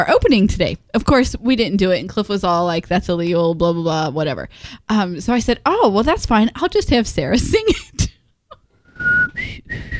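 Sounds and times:
speech: 0.0s - 7.9s
person whistling a tune: 8.9s - 9.9s.

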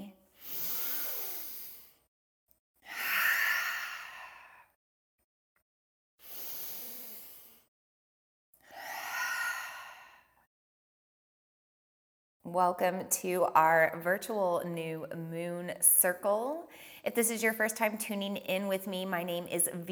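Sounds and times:
deep breaths in and out during a seated guided meditation: 0.4s - 2.1s, 2.9s - 4.7s, 6.2s - 7.7s, 8.7s - 10.4s, 16.7s - 17.1s
speech: 12.5s - 19.9s.

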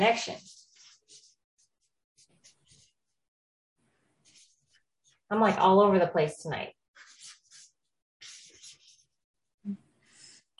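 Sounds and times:
speech: 0.0s - 0.6s, 5.3s - 6.8s
pen scribbling on a paper pad: 0.4s - 3.0s, 7.0s - 9.2s.

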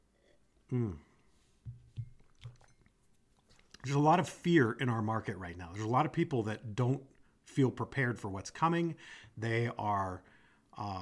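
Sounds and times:
speech: 0.7s - 1.1s, 3.8s - 11.0s
person gulping a drink: 0.7s - 3.9s.

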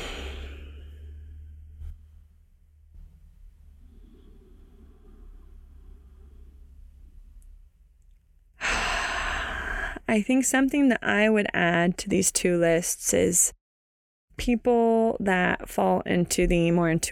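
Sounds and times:
deep breathing during a movement session: 0.0s - 2.0s, 3.6s - 7.3s, 8.6s - 10.0s
low steady rumble: 0.0s - 9.9s
speech: 10.1s - 13.6s, 14.4s - 17.0s.

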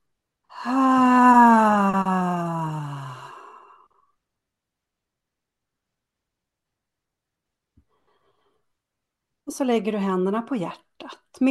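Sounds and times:
speech: 0.6s - 0.9s, 9.5s - 11.4s
long voiced sighing exhale through the mouth during a breathing exercise: 0.6s - 4.0s.

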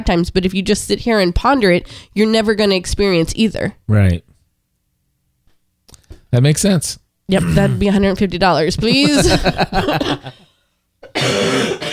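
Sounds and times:
speech: 0.0s - 4.3s, 6.3s - 10.4s, 11.1s - 11.9s
harsh raspy coughing: 7.4s - 7.9s, 11.0s - 11.9s
laughter: 8.8s - 10.4s.

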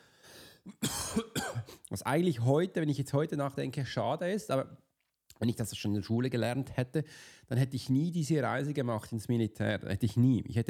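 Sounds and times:
harsh coughs: 0.7s - 1.8s
speech: 2.0s - 4.8s, 5.4s - 10.6s.

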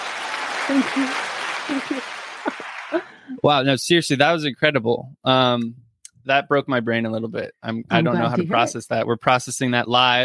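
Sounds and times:
audience clapping for a magician after a card trick: 0.0s - 3.3s
speech: 0.7s - 2.2s, 2.9s - 10.2s
scattered voices and whoops from the audience: 0.7s - 3.4s
laughter: 0.7s - 3.7s, 7.8s - 9.0s.

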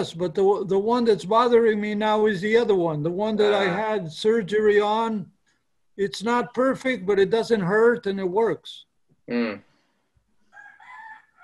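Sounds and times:
speech: 0.0s - 5.4s, 6.0s - 9.7s
rooster crowing: 10.5s - 11.4s.

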